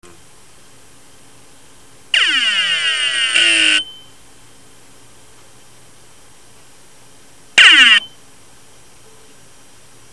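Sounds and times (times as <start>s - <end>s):
phaser noise from head stuck to platter: 2.1s - 4.1s, 7.6s - 8.2s.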